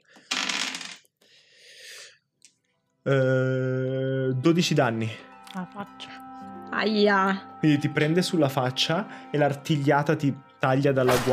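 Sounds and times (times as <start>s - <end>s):
two six-sided dice rolled in a tabletop role-playing game: 0.2s - 1.1s
speech: 3.0s - 3.8s, 4.4s - 6.2s, 6.8s - 11.3s.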